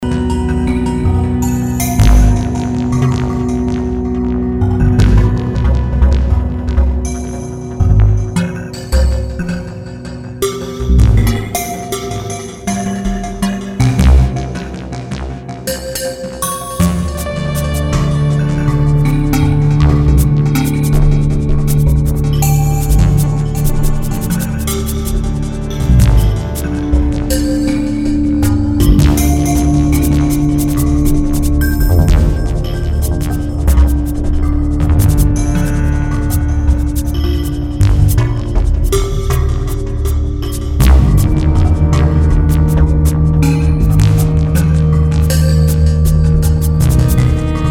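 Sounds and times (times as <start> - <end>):
electronic music: 0.0 - 47.7.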